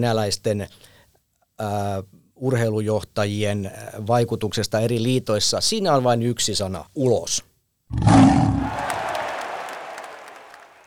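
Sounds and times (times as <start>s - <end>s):
speech: 0.0s - 0.9s, 1.6s - 8.9s
lion roar: 7.9s - 9.0s.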